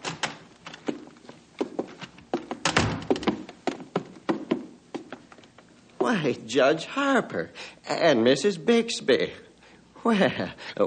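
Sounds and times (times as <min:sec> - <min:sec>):
door opening and closing: 0:00.0 - 0:01.1, 0:01.7 - 0:03.6
wooden thunks and knocks: 0:00.0 - 0:05.3
speech: 0:06.1 - 0:09.4, 0:10.0 - 0:10.8.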